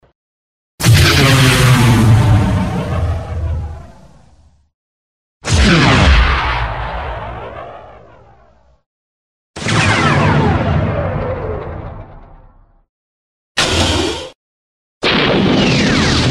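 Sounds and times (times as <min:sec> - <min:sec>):
alien blaster cannons firing: 0:00.8 - 0:04.3, 0:05.4 - 0:08.5, 0:09.6 - 0:12.4, 0:13.6 - 0:14.4, 0:15.0 - 0:16.2.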